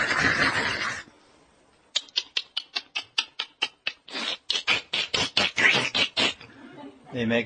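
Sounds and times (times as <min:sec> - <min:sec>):
voice imitating monkey chattering: 0:00.0 - 0:01.1, 0:01.9 - 0:06.5
speech: 0:07.1 - 0:07.4.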